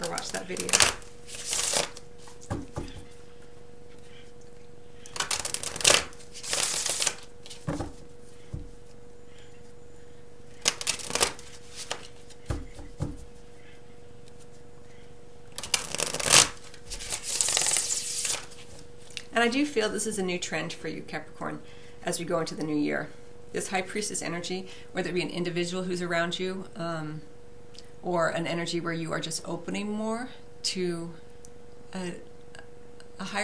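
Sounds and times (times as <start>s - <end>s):
deck of tarot cards shuffled for a tarot reading: 0.0s - 3.2s, 5.1s - 9.0s, 10.5s - 13.4s, 15.5s - 19.3s
speech: 0.2s - 1.0s, 19.4s - 27.3s, 28.0s - 31.2s, 31.9s - 32.3s, 33.2s - 33.4s.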